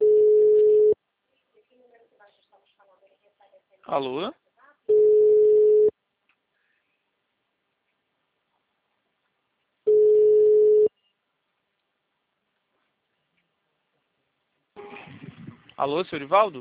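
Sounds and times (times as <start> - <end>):
telephone line beeps after a dropped call: 0.0 - 1.0, 4.9 - 5.9, 9.9 - 10.9
speech: 3.9 - 4.4, 15.8 - 16.6.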